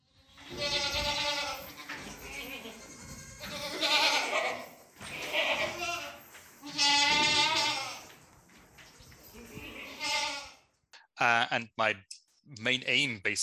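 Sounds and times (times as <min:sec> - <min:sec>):
farm goat bleating: 0:00.1 - 0:08.1, 0:09.3 - 0:10.7
speech: 0:11.6 - 0:13.4.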